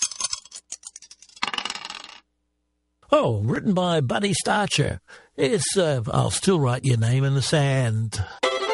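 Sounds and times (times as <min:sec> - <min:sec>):
dice clattering on a hard surface: 0:00.0 - 0:02.2
speech: 0:03.1 - 0:08.4.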